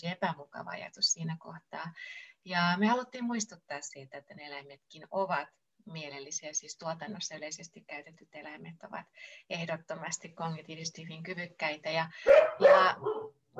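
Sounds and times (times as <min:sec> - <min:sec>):
speech: 0:00.0 - 0:13.5
dog barking: 0:12.2 - 0:13.5.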